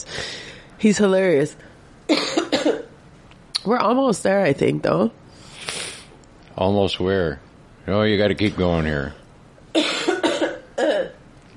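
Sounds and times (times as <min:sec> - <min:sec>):
speech: 0:00.0 - 0:02.9, 0:03.6 - 0:05.2, 0:06.6 - 0:09.2
harsh broadband coughs: 0:02.1 - 0:02.9, 0:09.7 - 0:11.2.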